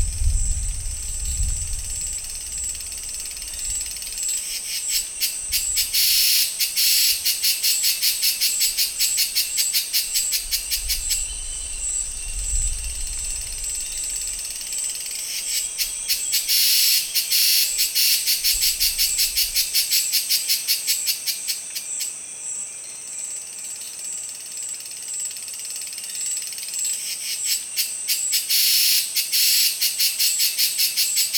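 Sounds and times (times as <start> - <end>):
faint low rumble: 0.0 - 3.8
cicadas buzzing in the Amazon rainforest: 0.0 - 31.3.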